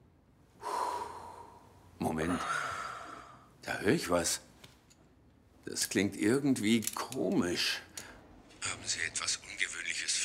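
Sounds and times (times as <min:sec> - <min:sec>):
patient drawing a deep breath during a chest examination: 0:00.6 - 0:01.8, 0:02.4 - 0:03.5
speech: 0:02.2 - 0:02.6, 0:03.7 - 0:04.5, 0:05.7 - 0:08.0, 0:08.9 - 0:09.4.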